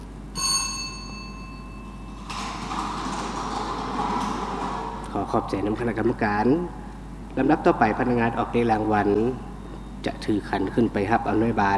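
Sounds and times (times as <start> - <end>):
ringing tone: 0.4 - 2.7
lottery balls dropping from draw machines into outer compartments: 2.0 - 5.4
speech: 5.2 - 6.8, 7.4 - 11.7.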